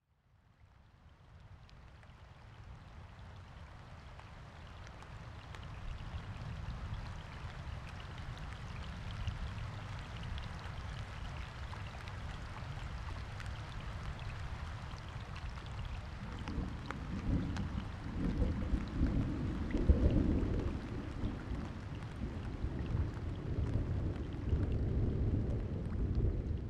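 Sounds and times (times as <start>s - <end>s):
rain: 0.2s - 26.6s
thunder: 16.2s - 26.6s.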